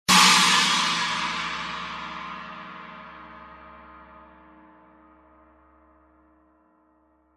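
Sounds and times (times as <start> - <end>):
20-inch China cymbal: 0.1 - 4.6.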